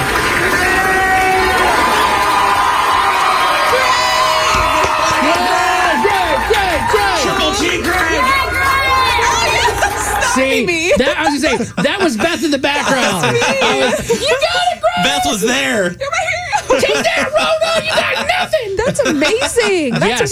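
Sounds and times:
hospital staff applauding: 0.0s - 10.8s
hospital staff cheering and shouting: 0.0s - 20.3s
laughter: 0.0s - 20.3s
people whooping: 0.0s - 20.3s
speech: 10.6s - 20.3s.

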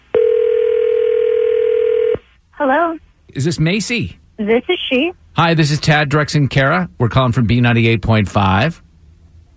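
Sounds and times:
loud steady telephone ringing tone as a call is placed: 0.1s - 2.2s
speech: 2.6s - 8.8s.

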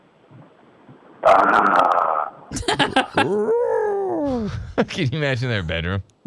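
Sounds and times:
speech: 1.2s - 3.6s, 4.3s - 6.2s
second voice making choppy guttural bursts sliding into a higher tone: 1.2s - 5.0s
laughter: 2.5s - 3.4s, 4.3s - 5.7s
man voicing a rough sustained growl: 3.2s - 4.8s.

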